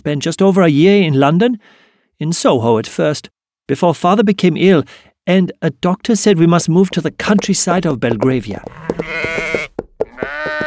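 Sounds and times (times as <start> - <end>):
speech: 0.0 - 9.7
soft thumps: 7.2 - 10.6
sheep bleating with a quavering tone: 8.5 - 10.6.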